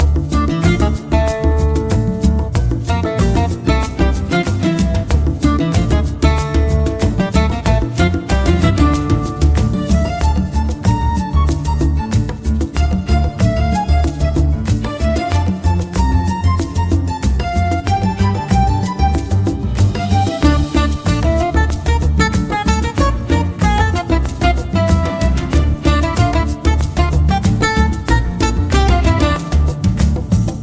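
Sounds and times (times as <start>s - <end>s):
background music in a hall: 0.0s - 30.6s.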